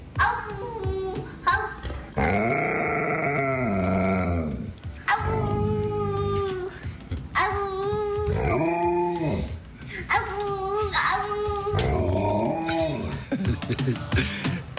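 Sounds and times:
young boy howling: 0.2 - 6.8, 7.4 - 13.1
Alaskan Malamute howling: 2.2 - 6.7, 7.9 - 9.6, 10.9 - 13.1
laughter: 12.7 - 14.7.

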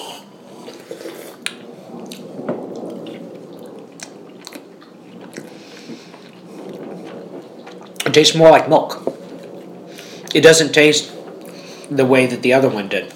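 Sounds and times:
person chewing a piece of stinky cheese: 3.0 - 8.1
speech: 8.2 - 9.1, 10.3 - 11.2, 11.9 - 13.1.

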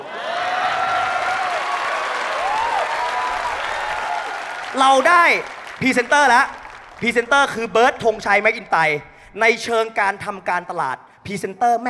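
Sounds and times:
people whooping faintly: 0.0 - 5.4
crowd applauding: 0.0 - 9.1
speech: 4.8 - 11.8.

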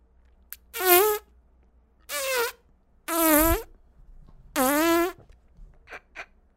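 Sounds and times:
farting noises: 0.7 - 1.2, 2.1 - 3.7, 4.5 - 5.2.

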